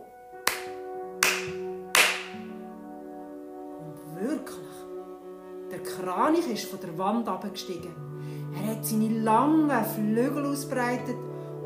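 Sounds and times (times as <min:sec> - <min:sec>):
sharp hand claps: 0:00.4 - 0:02.5
speech: 0:06.0 - 0:08.1, 0:08.8 - 0:11.6.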